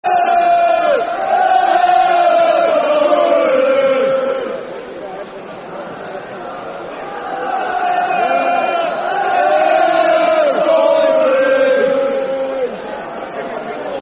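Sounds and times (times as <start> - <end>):
football chant: 0.0 - 4.9, 7.0 - 13.1.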